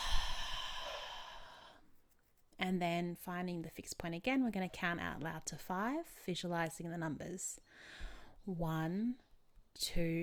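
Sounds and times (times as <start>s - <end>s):
deep breath slowly exhaled during a guided breathing exercise: 0.0s - 1.8s
speech: 2.6s - 9.2s, 9.8s - 10.2s.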